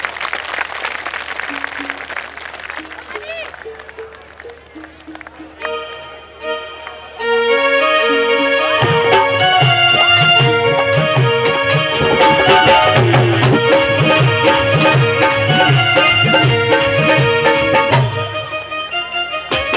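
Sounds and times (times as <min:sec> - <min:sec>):
large crowd of devotees clapping loudly to welcome a party organizer: 0:00.0 - 0:05.7
tuneful instrumental music with sustained notes: 0:01.4 - 0:19.7.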